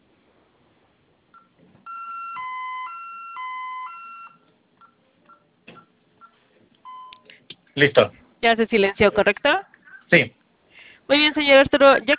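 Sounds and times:
short keypad beeps as a code is entered, heard over a phone line: 1.4s - 7.2s
alternating two-tone electronic alarm during a test, heard over a phone line: 1.9s - 4.5s
speech: 7.8s - 10.4s, 11.1s - 12.1s.

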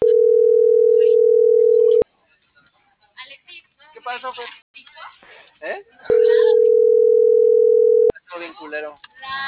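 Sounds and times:
telephone busy tone after a call cut off: 0.0s - 2.0s, 6.1s - 8.1s
speech: 4.1s - 4.6s.

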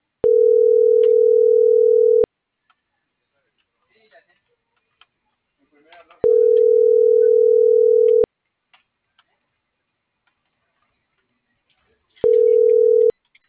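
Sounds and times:
mobile phone call ringing tone beeps: 0.2s - 2.3s, 6.2s - 8.3s, 12.2s - 13.1s.

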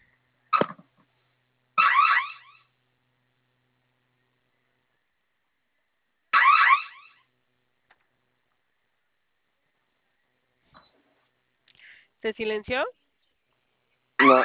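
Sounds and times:
security system alarm sounding in warbling electronic bursts: 1.8s - 2.7s, 6.3s - 7.2s, 14.2s - 14.4s
speech: 12.2s - 13.0s, 14.2s - 14.4s.

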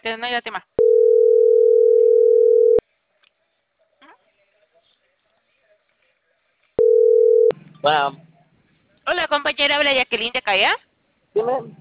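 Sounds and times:
speech: 0.0s - 0.8s, 7.8s - 8.3s, 9.1s - 11.7s
telephone line tone on a call: 0.8s - 2.8s, 6.8s - 7.5s
faint clicks and rustles: 3.1s - 6.8s.

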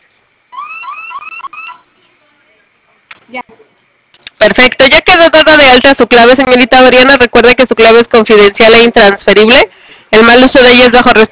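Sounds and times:
security alarm sounding during a test: 0.5s - 1.9s
speech: 3.3s - 3.5s, 4.4s - 11.2s.

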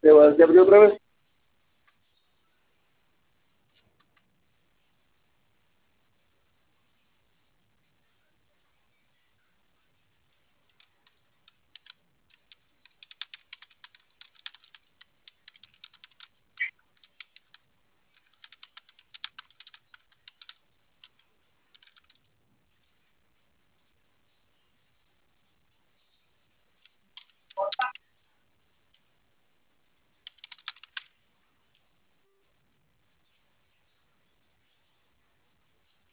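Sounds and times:
speech: 0.1s - 1.0s
typing on a computer keyboard: 10.7s - 22.3s, 26.8s - 28.0s, 30.2s - 31.1s.

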